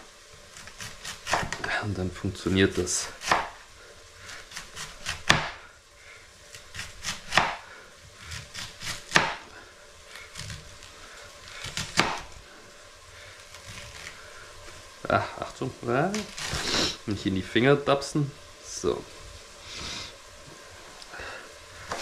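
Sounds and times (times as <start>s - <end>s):
knife slicing food by hand into very thin slices: 0.5s - 1.6s, 3.1s - 3.6s, 4.3s - 5.6s, 6.5s - 7.6s, 8.3s - 9.4s, 11.6s - 12.3s, 16.2s - 17.0s
speech: 1.7s - 3.3s, 15.7s - 19.2s.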